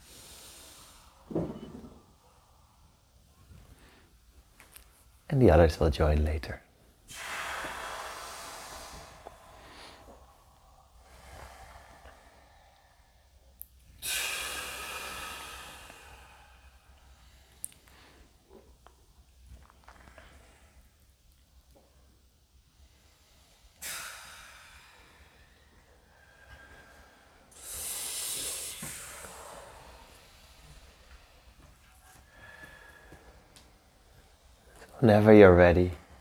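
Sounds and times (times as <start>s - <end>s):
speech: 5.3s - 6.6s, 35.1s - 36.0s
forceful breathing during breathwork exercise: 7.1s - 13.4s, 14.0s - 18.4s, 23.7s - 34.8s.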